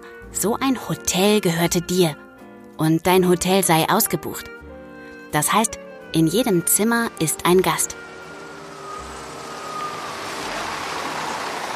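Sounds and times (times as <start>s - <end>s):
speech: 0.3s - 4.5s, 5.3s - 8.2s
road noise: 5.9s - 11.7s
bus engine rumbling while pulling up: 6.2s - 11.7s
thin whine: 6.3s - 11.7s.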